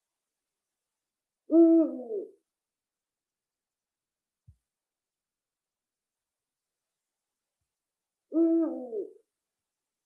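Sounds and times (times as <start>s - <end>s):
Eurasian eagle-owl hooting in the Jokioinen area: 1.5s - 2.4s, 8.3s - 9.2s.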